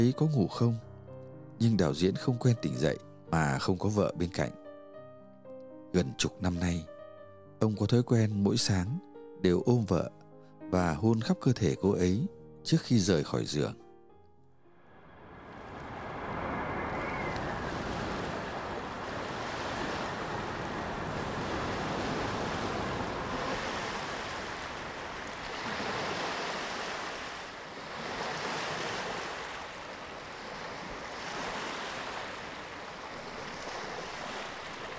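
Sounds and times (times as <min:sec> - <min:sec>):
speech: 0:00.0 - 0:00.9, 0:01.6 - 0:04.6, 0:05.9 - 0:06.9, 0:07.6 - 0:13.8
ocean surf breaking against the shore before dawn: 0:14.8 - 0:34.9
gusty wind off the sea buffeting the microphone: 0:15.0 - 0:27.8.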